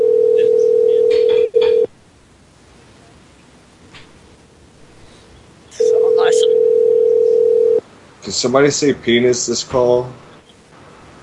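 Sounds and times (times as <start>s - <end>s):
telephone line tone during a call-in show: 0.0s - 1.9s, 5.8s - 7.8s
speech: 8.4s - 10.3s.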